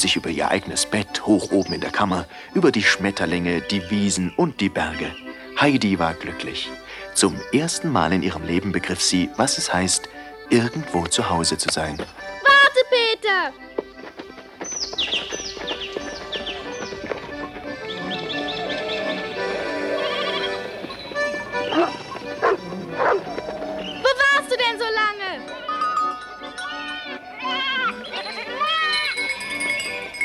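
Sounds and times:
birds chirping outdoors: 0.0 - 12.9, 13.5 - 30.2
speech: 0.0 - 13.9
goats bleating in wavering quavering calls: 17.6 - 24.4.

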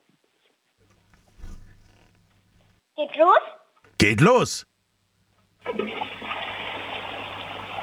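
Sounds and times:
speech: 3.0 - 4.7
toilet flushing: 5.6 - 7.8.

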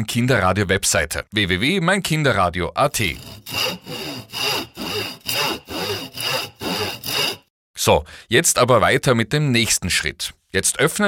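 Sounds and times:
speech: 0.0 - 3.8, 7.8 - 11.0
hand saw cutting a square wooden rod: 3.0 - 7.5.

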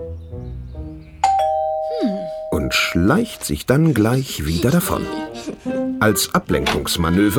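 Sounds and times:
soft low music: 0.0 - 7.3
doorbell chiming at a front door: 1.2 - 3.5
speech: 3.0 - 7.3.

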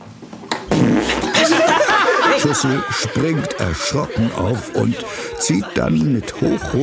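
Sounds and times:
whoopee cushion fart noise as a teacher sits down in a classroom: 0.6 - 1.6
laughter: 0.7 - 6.8
speech: 2.4 - 6.8.

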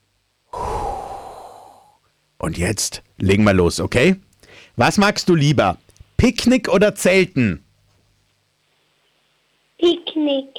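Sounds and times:
person taking a deep breath in and out: 0.5 - 2.0
speech: 2.4 - 7.6, 9.8 - 10.5.

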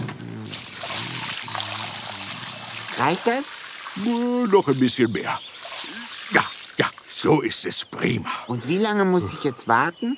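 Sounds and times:
water pouring from a watering can onto garden soil: 0.4 - 7.2
speech: 3.0 - 5.5, 6.3 - 10.1.

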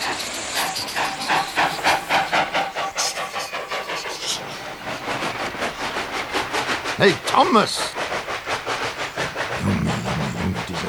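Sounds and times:
steam locomotive chuffing as it pulls off after unloading: 0.0 - 10.8
speech: 7.0 - 8.0, 9.6 - 10.0.

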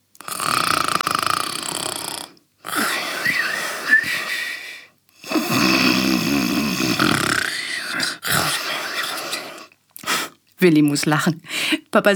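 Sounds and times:
loud rasping snoring: 0.2 - 4.3, 5.2 - 9.7
speech: 10.6 - 12.1.

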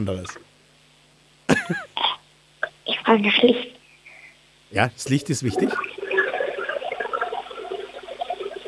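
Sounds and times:
speech: 0.0 - 0.5, 1.7 - 1.9, 3.1 - 3.8, 4.7 - 6.0
toilet flushing: 5.5 - 8.6.

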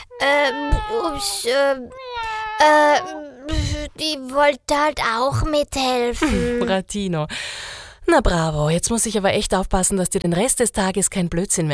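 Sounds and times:
cat meowing: 0.0 - 4.0
speech: 0.2 - 11.7.

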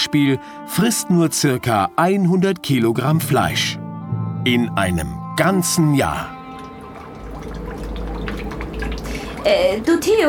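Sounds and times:
speech: 0.0 - 3.8, 4.4 - 6.4, 9.4 - 10.2
water dripping, leaking into a submarine: 4.6 - 10.2.

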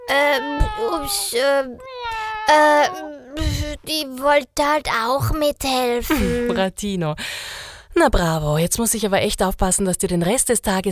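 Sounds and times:
cat meowing: 0.0 - 3.9
speech: 0.1 - 10.8.

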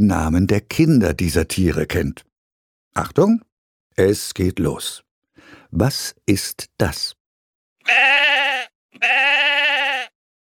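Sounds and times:
speech: 0.0 - 2.3, 2.9 - 5.0, 5.7 - 7.2, 7.8 - 9.7
sheep bleating: 7.8 - 10.2.

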